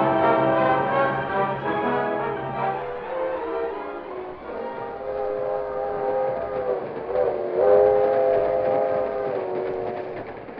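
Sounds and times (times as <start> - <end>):
sustained train horn chord: 0.0 - 9.4
moving passenger train rumbling: 0.0 - 10.5.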